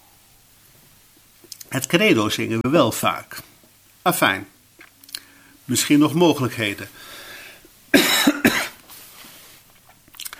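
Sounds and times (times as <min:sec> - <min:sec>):
speech: 0:01.4 - 0:04.5, 0:05.7 - 0:07.2
person coughing harshly: 0:07.9 - 0:08.8
faint rustles: 0:08.8 - 0:10.0.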